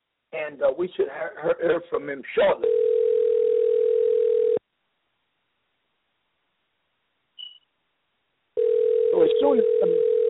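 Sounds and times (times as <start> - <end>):
speech: 0.3 - 2.8, 9.4 - 10.0
telephone dial tone while a call is being placed: 2.6 - 4.6, 8.6 - 10.2
faint high beep: 7.4 - 7.7.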